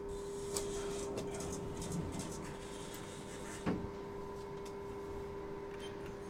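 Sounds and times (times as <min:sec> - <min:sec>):
steady mechanical hum: 0:00.0 - 0:06.2
glass lift doors sliding open at a library: 0:00.8 - 0:03.9.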